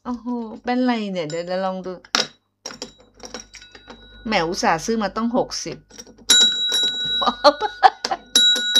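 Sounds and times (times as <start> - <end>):
speech: 0.1 - 2.2, 4.2 - 6.0, 7.2 - 7.7
small hand bell ringing: 2.8 - 4.8, 6.3 - 8.7.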